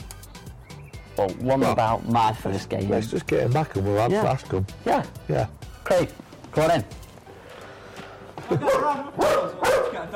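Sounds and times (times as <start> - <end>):
speech: 1.2 - 7.0, 8.5 - 10.1
dog barking: 8.6 - 10.1.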